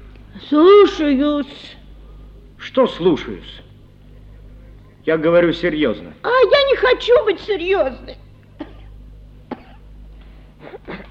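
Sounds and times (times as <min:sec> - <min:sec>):
low hum: 0:00.0 - 0:11.0
speech: 0:00.4 - 0:01.8, 0:02.8 - 0:03.7, 0:05.0 - 0:08.2
woman coughing: 0:08.6 - 0:09.9, 0:10.6 - 0:11.0.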